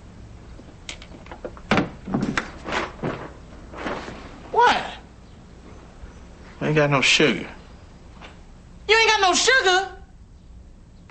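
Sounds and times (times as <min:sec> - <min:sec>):
door slamming shut: 0:01.7 - 0:03.2
speech: 0:06.7 - 0:07.6, 0:09.3 - 0:10.0.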